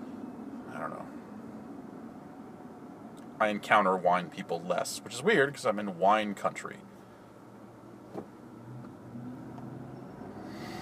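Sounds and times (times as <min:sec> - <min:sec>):
speech: 0:03.4 - 0:06.9
Toyota SUV driving past: 0:08.1 - 0:10.7.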